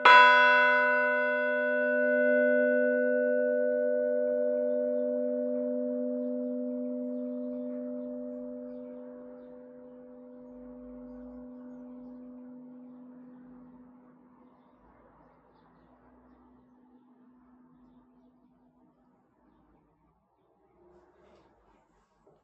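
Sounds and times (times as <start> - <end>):
bells ringing: 0.0 - 14.3.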